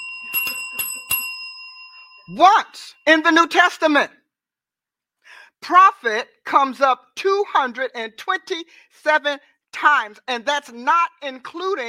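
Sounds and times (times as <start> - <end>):
bell ringing with a sustained metallic tone: 0.0 - 3.1
speech: 2.3 - 4.2, 5.6 - 11.8.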